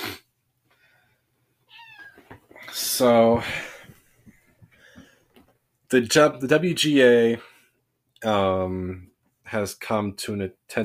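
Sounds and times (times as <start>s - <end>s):
young mixed-breed house cat meowing while begging for attention: 1.7s - 2.2s
speech: 3.0s - 3.7s, 5.9s - 7.5s, 8.2s - 10.8s.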